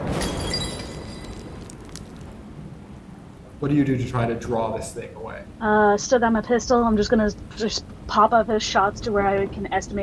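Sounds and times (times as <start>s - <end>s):
loud shattering crash with crackling breakage: 0.0s - 2.4s
speech: 3.6s - 10.0s.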